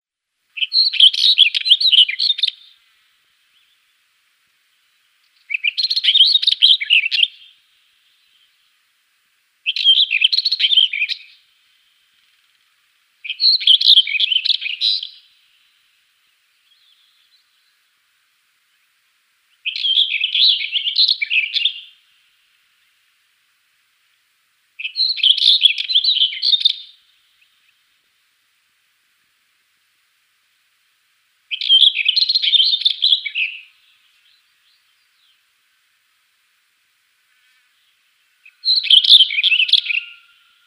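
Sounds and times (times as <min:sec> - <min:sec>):
Black Wheatear singing: 0:00.5 - 0:08.9, 0:09.6 - 0:18.0, 0:18.7 - 0:23.1, 0:24.8 - 0:27.9, 0:31.5 - 0:35.5, 0:37.4 - 0:40.6.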